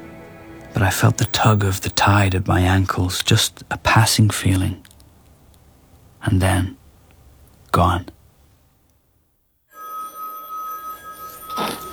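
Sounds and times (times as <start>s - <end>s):
speech: 0.8s - 4.9s, 6.2s - 6.8s, 7.7s - 8.2s
man's phone ringing with a bright electronic tone: 1.2s - 2.4s, 9.7s - 11.9s.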